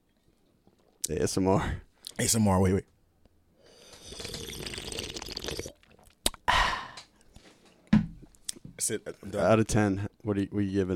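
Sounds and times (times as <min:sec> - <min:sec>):
speech: 0:01.1 - 0:02.9, 0:08.9 - 0:10.9
sipping and slurping warm pineapple juice: 0:03.7 - 0:06.5
sharp mouth clicks: 0:03.8 - 0:07.2
breathy exhale: 0:06.5 - 0:07.1.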